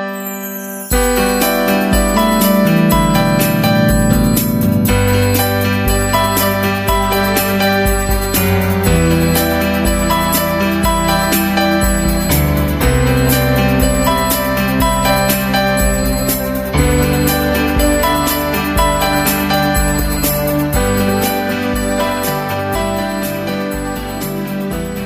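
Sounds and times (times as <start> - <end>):
iPhone ringtone: 0.1 - 25.0.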